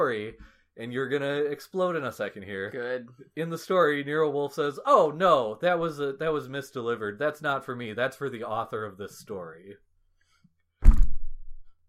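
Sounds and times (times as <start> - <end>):
speech: 0.0 - 9.9
person's head thumping onto a table: 10.8 - 11.5.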